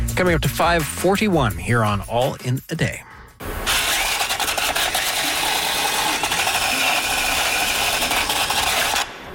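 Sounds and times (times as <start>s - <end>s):
speech: 0.2s - 3.1s
buzzing power tool rasp cleaning a wheel rim before retorquing: 3.7s - 9.1s.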